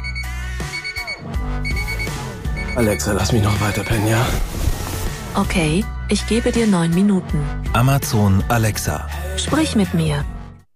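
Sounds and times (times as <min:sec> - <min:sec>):
alarm clock ringing: 0:00.0 - 0:04.2
speech: 0:02.8 - 0:04.5, 0:05.4 - 0:10.4.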